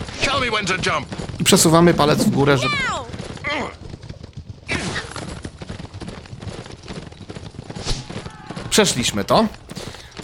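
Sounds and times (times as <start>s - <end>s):
galloping horse hooves in a mobile endless-runner video game: 0.0s - 10.2s
speech: 0.4s - 3.8s, 8.8s - 9.6s
busy mobile video game sounds: 1.4s - 3.4s.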